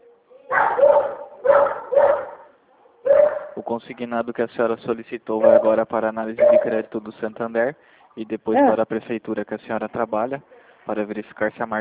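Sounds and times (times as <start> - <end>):
faint low hum: 0.0 - 11.7
dog barking: 0.5 - 3.6, 5.4 - 5.8, 6.4 - 6.8
speech: 3.7 - 11.7.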